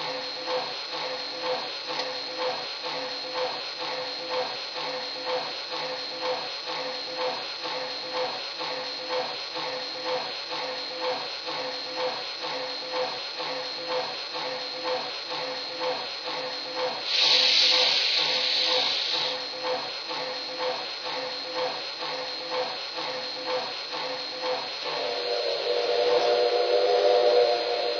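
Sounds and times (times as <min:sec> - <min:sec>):
recently overhauled steam locomotive chuffing: 0:00.0 - 0:27.9
steam locomotive hissing steam: 0:15.8 - 0:20.3, 0:24.8 - 0:27.9.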